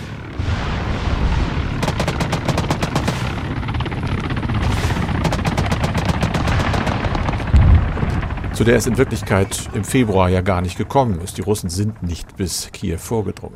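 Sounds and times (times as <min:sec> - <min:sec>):
explosions in a war video game: 0:00.0 - 0:03.7, 0:04.5 - 0:09.4
automatic gunfire from a war video game: 0:01.8 - 0:03.5, 0:04.6 - 0:07.7
engine noise: 0:02.8 - 0:12.4
speech: 0:08.6 - 0:13.5.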